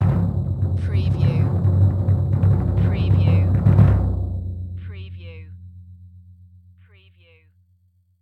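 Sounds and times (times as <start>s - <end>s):
cartoon kick drum: 0.0s - 5.1s.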